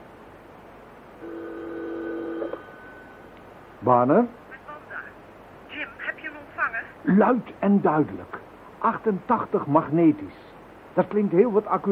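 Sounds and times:
telephone line tone while a call is dialed: 1.2 - 3.1
speech: 3.8 - 4.4, 7.1 - 10.4, 11.0 - 11.8.

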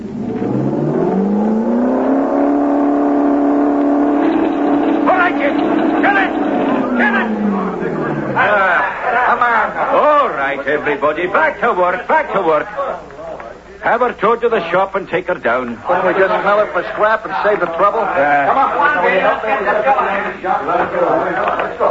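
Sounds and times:
engine revving at full throttle: 0.0 - 8.8
laughter: 5.1 - 11.0, 15.8 - 21.8
speech: 10.5 - 13.1, 13.8 - 21.8.

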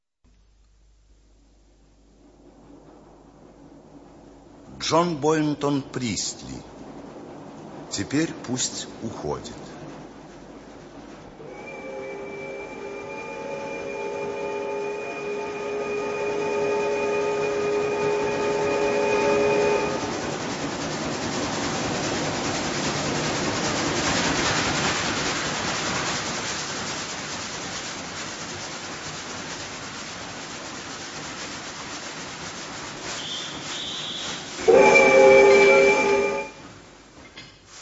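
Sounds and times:
suburban train arriving at a station rumbling on rails: 1.4 - 37.8
speech: 4.8 - 6.7, 7.9 - 9.7
suburban train horn: 11.4 - 20.2, 33.2 - 36.7.

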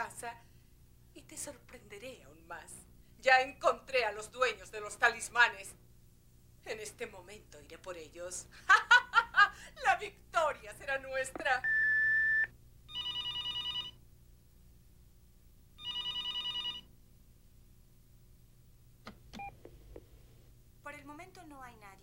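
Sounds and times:
speech: 0.2 - 0.5, 1.2 - 5.8, 6.6 - 11.9
telephone ringing with trilling bells: 11.6 - 14.0, 15.8 - 16.9
warbling answering machine tone: 11.6 - 14.0.

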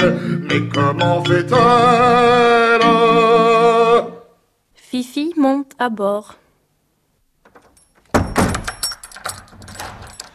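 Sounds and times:
speech: 0.0 - 3.2, 4.9 - 6.4
key locking villa door, clicks and rattles: 7.4 - 10.3
villa door closing thunk: 7.4 - 10.3.

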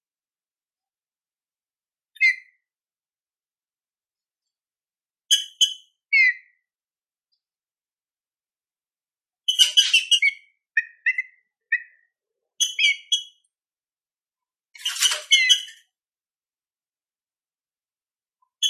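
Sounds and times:
green-winged saltator classic-style song: 2.1 - 2.7, 5.3 - 6.7, 9.5 - 13.4.

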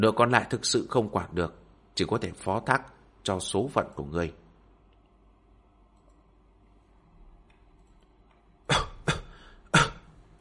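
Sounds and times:
speech: 0.0 - 4.4
dry coughing: 8.7 - 10.2.

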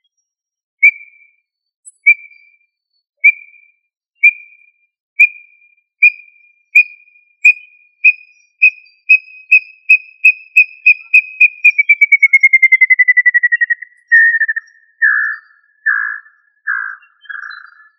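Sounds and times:
tinamou whistled call series: 4.2 - 4.6, 5.2 - 17.9.

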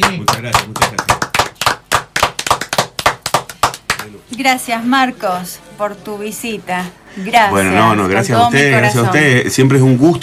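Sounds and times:
audience applause for a guest: 0.0 - 4.2
speech: 0.1 - 0.8, 4.1 - 10.2.

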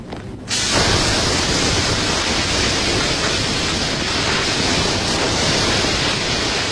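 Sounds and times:
high-pressure fire hose spraying water: 0.5 - 6.7.

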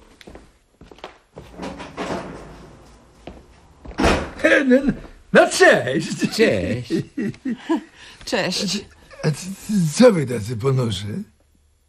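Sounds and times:
door being opened: 1.4 - 4.4
speech: 4.4 - 11.3
laughter: 5.9 - 8.0.

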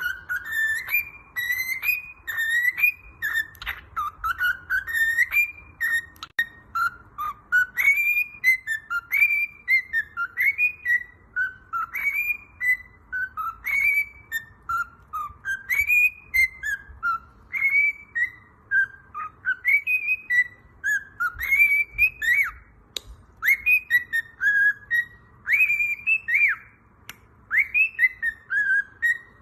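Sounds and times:
cockatiel whistling a melodic song: 0.0 - 29.3
sharp click: 22.9 - 23.2.

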